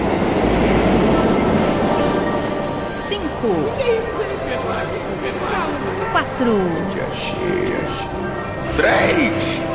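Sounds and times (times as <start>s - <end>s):
train rumbling at a station platform: 0.0s - 6.0s
speech: 6.4s - 9.6s.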